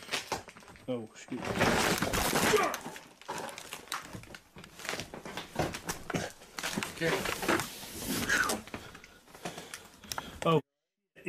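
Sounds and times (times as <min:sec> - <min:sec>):
rattling debris: 0:00.0 - 0:07.7
floor cracking and breaking as someone falls through: 0:00.0 - 0:07.8
speech: 0:00.9 - 0:03.0, 0:07.0 - 0:07.5, 0:10.4 - 0:10.6.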